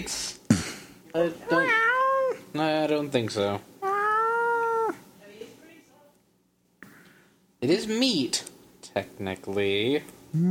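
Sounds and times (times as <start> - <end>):
speech: 0.0 - 0.3, 1.2 - 1.9, 2.5 - 3.7, 7.6 - 10.4
cat meowing: 1.5 - 2.4, 3.8 - 5.0.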